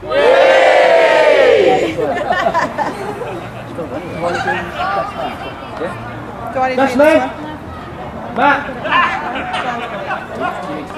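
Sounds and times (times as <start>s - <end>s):
group cheering loudly together: 0.0s - 2.1s
scattered chatter: 0.0s - 10.9s
people laughing: 1.6s - 5.7s, 8.8s - 10.7s
speech: 6.6s - 7.4s, 8.4s - 8.8s.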